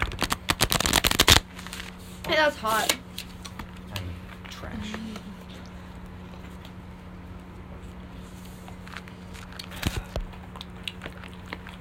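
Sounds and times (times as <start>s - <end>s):
deck of playing cards being shuffled: 0.0s - 2.0s
speech: 2.3s - 3.1s, 4.6s - 5.3s.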